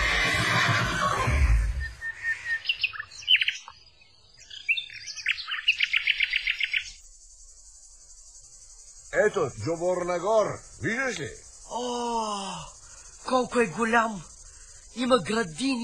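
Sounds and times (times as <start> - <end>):
young lively horse whinnying: 0.0 - 1.8
bright high bird chirps: 0.5 - 15.8
speech: 9.2 - 14.3, 15.0 - 15.8.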